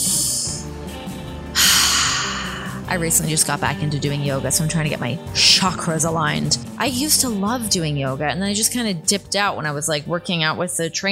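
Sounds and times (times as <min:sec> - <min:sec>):
deep breathing: 0:01.4 - 0:02.9
speech: 0:02.9 - 0:11.1.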